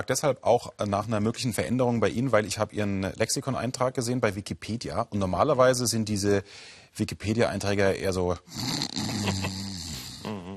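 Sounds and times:
speech: 0.0 - 9.4
voice imitating snoring: 8.5 - 10.5.

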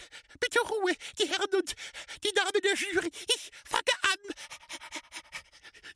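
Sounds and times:
speech: 0.5 - 4.5
poodle panting rapidly: 4.4 - 5.9.

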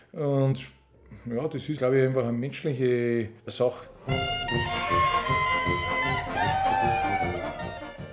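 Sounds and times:
speech: 0.1 - 5.3
loud shrill alpine yodel shout of joy: 4.0 - 7.8.

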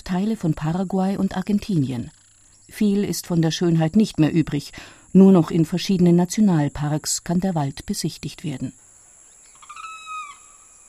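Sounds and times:
steady high-pitched buzz of cicadas: 0.0 - 10.8
speech: 0.1 - 8.9
shrill whistled bird call: 9.4 - 10.8.

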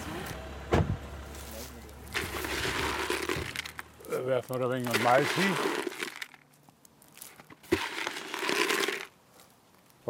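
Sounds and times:
car door thud: 0.7 - 1.0
rustling and shuffling movement of a hunter: 1.2 - 10.0
speech: 4.3 - 5.8.

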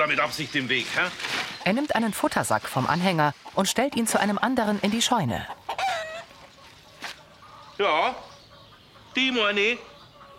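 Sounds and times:
speech: 0.0 - 5.6, 7.8 - 8.3, 9.2 - 9.9
chicken clucking: 2.8 - 10.3.

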